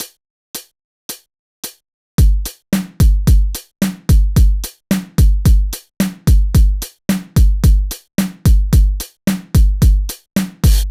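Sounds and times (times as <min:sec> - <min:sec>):
drum beat with kick drum variations for guitar practice: 0:00.0 - 0:10.8.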